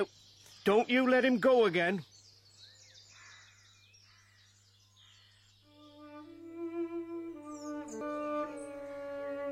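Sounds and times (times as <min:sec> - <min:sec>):
speech: 0:00.0 - 0:02.1
nightingale singing: 0:00.0 - 0:09.5.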